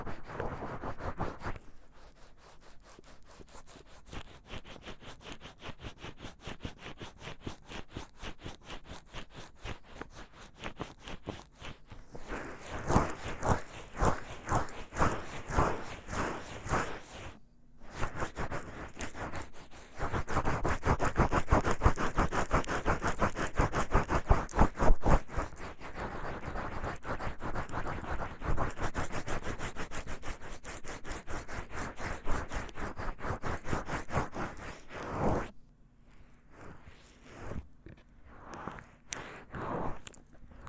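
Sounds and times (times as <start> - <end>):
wet rubbing and squishing of an ear massage with lotion: 0.0 - 35.5, 36.2 - 40.6.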